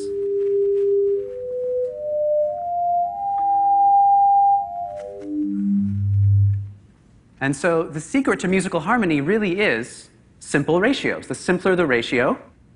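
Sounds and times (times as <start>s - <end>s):
clean pure electronic tone at multiples of base frequency: 0.0s - 6.9s
speech: 7.4s - 12.5s.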